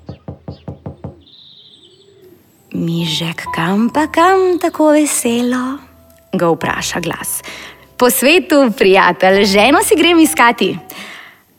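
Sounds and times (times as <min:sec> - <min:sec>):
knocking on the wood of an old willow tree: 0:00.0 - 0:01.2
speech: 0:02.8 - 0:10.8.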